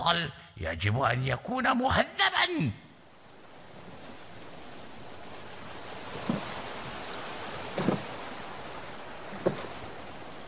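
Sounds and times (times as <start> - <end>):
speech: 0.1 - 2.8
sea water washing: 3.1 - 10.4
dull knocks of boats bumping on the waves: 6.1 - 6.6, 7.7 - 8.2, 9.3 - 9.8.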